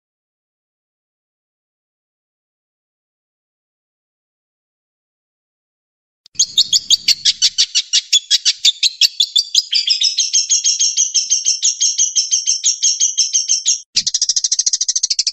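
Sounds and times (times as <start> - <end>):
Long-tailed shrike training song with sharp notes, chattering run and buzzy trill: 6.4 - 15.3.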